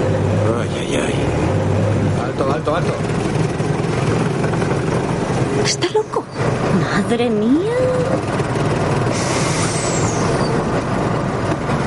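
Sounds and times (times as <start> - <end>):
bus engine rumble while maneuvering: 0.0 - 11.8
speech: 7.1 - 8.4
bus air-brake hiss: 9.1 - 10.4.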